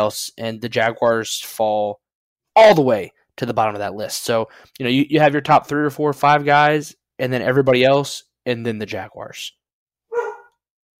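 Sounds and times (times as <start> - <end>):
speech: 0.0 - 2.0, 2.6 - 9.6
dog barking: 10.1 - 10.6.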